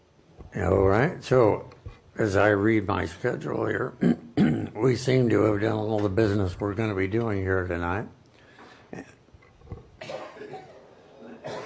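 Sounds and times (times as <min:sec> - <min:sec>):
speech: 0:00.6 - 0:08.2
rough coughs at an evening city council meeting in Goleta: 0:04.0 - 0:04.8, 0:10.0 - 0:11.6.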